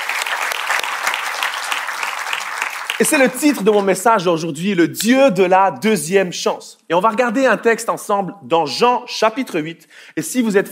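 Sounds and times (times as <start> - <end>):
church congregation applauding during a service: 0.0 - 4.0
speech: 3.0 - 10.6.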